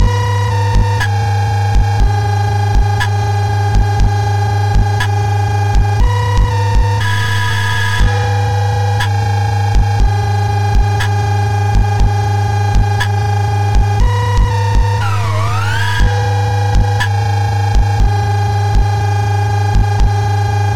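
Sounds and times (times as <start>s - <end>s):
single-cycle 1 kHz sine wave tone: 0.0s - 20.7s.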